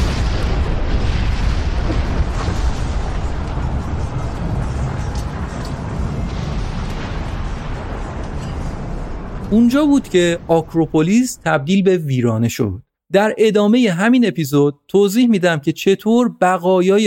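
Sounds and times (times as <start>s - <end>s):
Venetian cannon fire striking the Parthenon in Athens: 0.0s - 10.5s
crackling debris from the explosion: 0.0s - 11.2s
explosion of stored Ottoman gunpowder, heavy low rumbling: 0.0s - 11.7s
speech: 9.5s - 17.0s.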